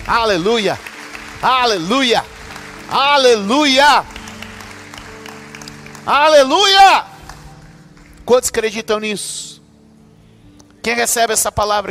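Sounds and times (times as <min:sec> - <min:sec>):
audience clapping in a reverberant church: 0:00.0 - 0:08.7
speech: 0:00.1 - 0:02.3, 0:02.9 - 0:04.1, 0:06.0 - 0:07.1, 0:08.3 - 0:09.5, 0:10.8 - 0:11.9.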